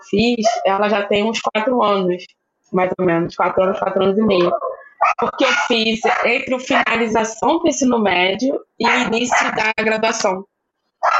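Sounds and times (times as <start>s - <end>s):
speech: 0.0s - 11.1s
dog bark: 0.4s - 0.7s, 4.4s - 7.0s, 8.8s - 9.6s, 11.0s - 11.1s.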